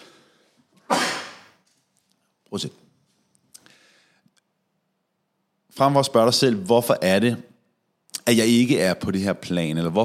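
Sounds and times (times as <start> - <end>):
person sneezing: 0.8 - 1.6
speech: 2.5 - 2.8, 5.8 - 7.5, 8.2 - 10.0
soft intake of breath: 3.6 - 4.3.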